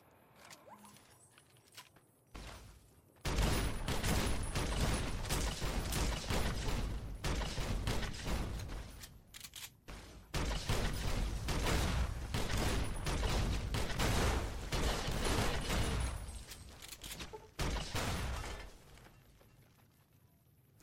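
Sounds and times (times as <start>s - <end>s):
grenade explosions in a shooting video game: 3.2s - 9.0s, 9.8s - 19.2s
gunfire in a shooting video game: 3.2s - 9.0s, 9.9s - 16.4s.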